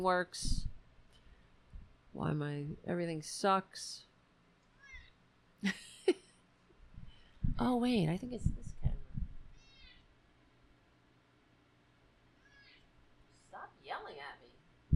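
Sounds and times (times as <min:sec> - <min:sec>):
speech: 0:00.0 - 0:00.7, 0:02.1 - 0:04.1, 0:05.6 - 0:06.2, 0:07.5 - 0:08.8
quiet hiss: 0:00.0 - 0:14.9
faint higher cat chirp: 0:04.8 - 0:05.1, 0:09.6 - 0:10.0, 0:12.4 - 0:12.8
male cat meowing: 0:04.8 - 0:05.1.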